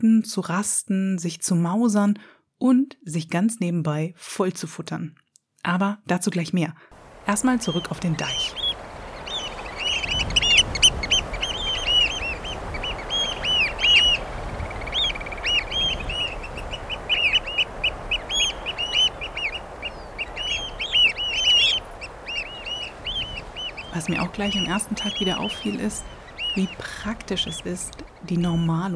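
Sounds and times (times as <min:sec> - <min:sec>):
speech: 0:00.0 - 0:08.6, 0:24.1 - 0:28.9
large flock of greylag geese honking and cackling: 0:07.0 - 0:28.7.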